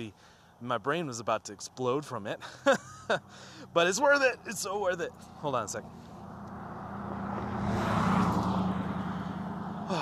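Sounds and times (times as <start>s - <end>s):
speech: 0.0s - 6.1s
car driving slowly past on a quiet road off a highway: 5.1s - 9.9s.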